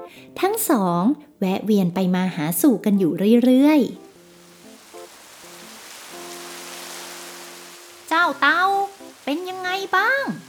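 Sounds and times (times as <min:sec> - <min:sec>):
speech: 0:00.1 - 0:04.0, 0:08.3 - 0:10.4
gentle sustained musical tones and held chord: 0:02.3 - 0:10.4
steady rain falling with soft hiss: 0:04.0 - 0:10.4.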